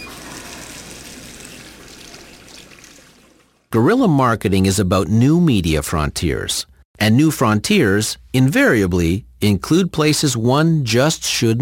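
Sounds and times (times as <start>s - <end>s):
hands being washed under running water from a tap: 0.0s - 3.7s
speech: 3.7s - 11.6s.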